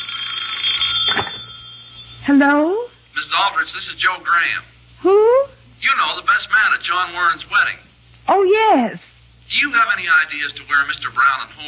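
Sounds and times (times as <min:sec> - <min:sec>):
telephone bell ringing: 0:00.0 - 0:02.5
speech: 0:02.3 - 0:11.6.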